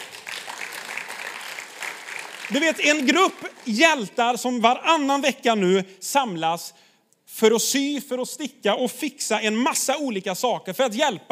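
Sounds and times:
crowd applauding: 0.0 - 4.1
speech: 2.5 - 6.8, 7.4 - 11.2.

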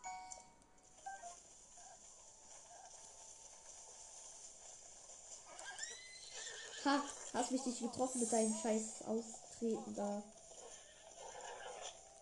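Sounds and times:
steady hiss: 0.0 - 12.2
horse being tamed whinnying: 5.6 - 7.4, 10.6 - 12.0
speech: 6.8 - 10.4.

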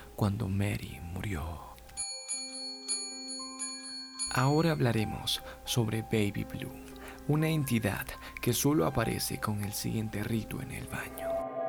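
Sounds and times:
speech: 0.2 - 1.7, 4.4 - 11.3
bell ringing: 2.0 - 5.2.

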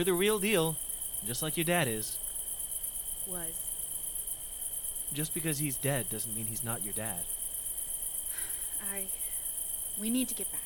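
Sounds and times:
faint voice-like tone: 0.0 - 2.2, 5.2 - 7.2
speech: 0.0 - 2.2, 3.2 - 3.7, 5.1 - 7.4, 8.8 - 9.2, 10.0 - 10.6
chorus of crickets chirping in a jungle at dusk: 0.0 - 10.6.

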